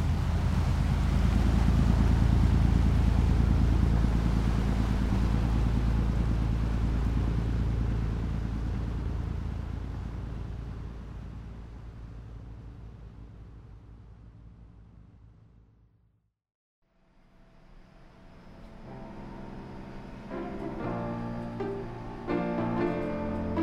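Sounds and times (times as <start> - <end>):
broad rushing water aboard a container ship: 0.0 - 13.2, 18.3 - 23.6
deep engine drone aboard a container ship under way: 0.0 - 15.8, 17.2 - 23.6.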